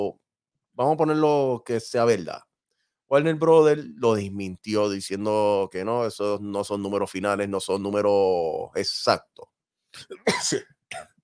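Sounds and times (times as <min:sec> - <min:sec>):
speech: 0:00.0 - 0:00.2, 0:00.8 - 0:02.5, 0:03.1 - 0:11.1
person sneezing: 0:10.0 - 0:11.2.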